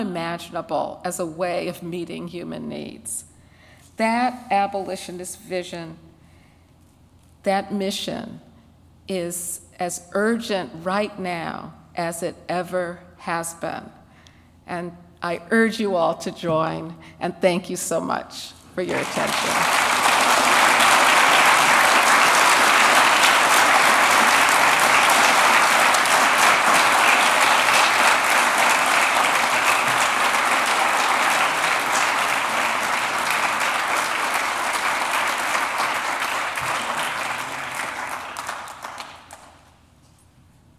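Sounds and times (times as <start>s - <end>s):
speech: 0.0s - 3.3s, 4.0s - 6.1s, 7.4s - 8.5s, 9.1s - 14.0s, 14.7s - 20.0s
dense applause from a large audience: 18.9s - 39.6s.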